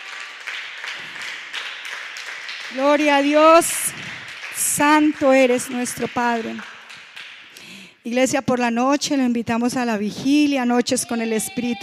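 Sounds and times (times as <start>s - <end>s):
church congregation applauding: 0.0s - 7.8s
speech: 2.7s - 4.1s, 4.8s - 6.7s, 8.0s - 11.8s.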